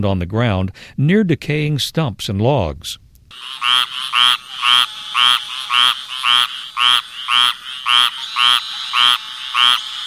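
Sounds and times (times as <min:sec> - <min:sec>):
speech: 0:00.0 - 0:04.4
squirrel tree frog calling: 0:03.3 - 0:10.0.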